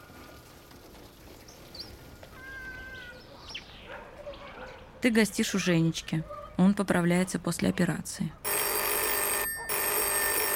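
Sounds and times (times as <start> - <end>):
speech: 5.0 - 8.4
telephone bell ringing: 8.5 - 10.5.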